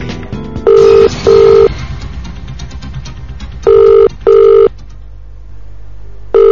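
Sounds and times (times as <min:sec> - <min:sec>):
phone line double-pulse ringback tone: 0:00.7 - 0:01.7, 0:03.6 - 0:04.7, 0:06.3 - 0:06.5
faint hiss: 0:03.7 - 0:06.5.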